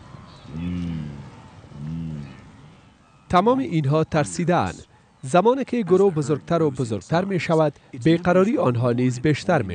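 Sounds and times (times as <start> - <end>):
wildebeest lowing grunts at river: 0.5 - 2.9
speech: 3.3 - 9.7.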